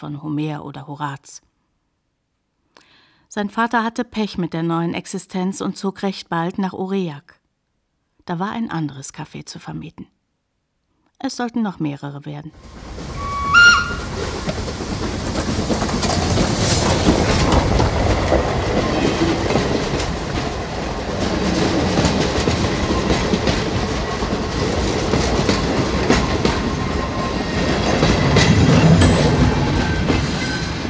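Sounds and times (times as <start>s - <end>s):
speech: 0.0s - 1.5s, 3.3s - 7.4s, 8.3s - 10.1s, 11.2s - 13.1s
four-cylinder steam locomotive running on a southern rail line: 12.6s - 30.8s
steam locomotive wheels clickety-clack on rails: 12.8s - 30.8s.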